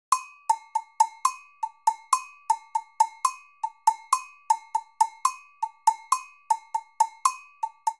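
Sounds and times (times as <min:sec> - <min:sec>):
samba rhythm on agogo bells, Latin percussion: 0:00.1 - 0:07.9.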